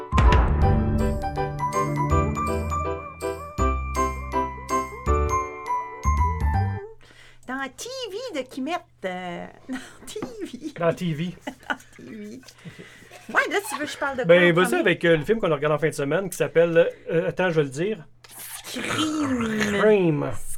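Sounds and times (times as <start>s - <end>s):
short segment theme jingle with tinkling notes and bass: 0.1s - 6.8s
speech: 7.8s - 11.5s, 12.2s - 20.5s.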